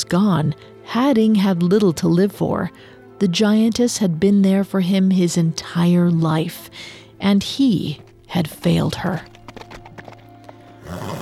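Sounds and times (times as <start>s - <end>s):
speech: 0.1s - 9.3s
horse hooves clopping: 7.2s - 11.2s
horse whinnying: 9.9s - 11.2s.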